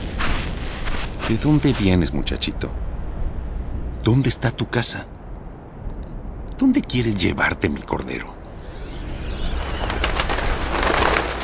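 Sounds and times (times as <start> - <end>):
steady outdoor hum: 0.0 - 11.4
speech: 1.3 - 2.8, 4.1 - 5.2, 6.6 - 8.4
flock of wild birds taking off, wings flapping: 9.6 - 11.4.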